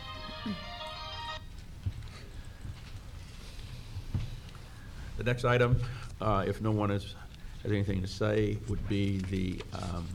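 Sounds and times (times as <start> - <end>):
mobile phone ringtone chiming during a trustees' meeting: 0.0 - 1.4
speech: 0.4 - 0.6, 5.2 - 10.1.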